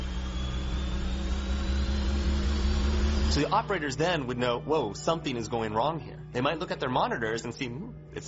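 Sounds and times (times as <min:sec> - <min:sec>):
centrifuges spinning up at high speed with deep droning hum: 0:00.0 - 0:06.3
speech: 0:03.3 - 0:08.2.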